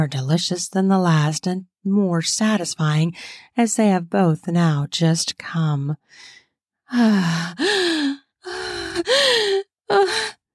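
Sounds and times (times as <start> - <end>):
speech: 0.0 - 10.4
woman gasping: 6.2 - 10.4.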